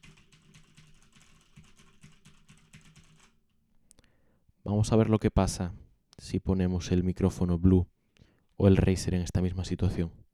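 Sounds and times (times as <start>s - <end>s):
typing on a computer keyboard: 0.0s - 3.4s
speech: 4.7s - 8.0s, 8.6s - 10.3s.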